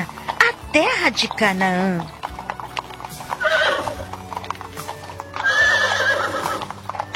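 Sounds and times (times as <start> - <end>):
horses galloping with hooves clip-clopping: 0.0 - 7.1
speech: 0.7 - 2.2.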